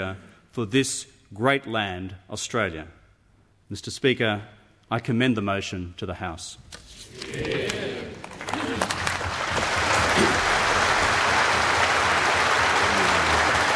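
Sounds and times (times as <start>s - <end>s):
speech: 0.0s - 3.0s, 3.7s - 7.8s
large crowd applauding after parliamentary speech: 7.2s - 13.7s.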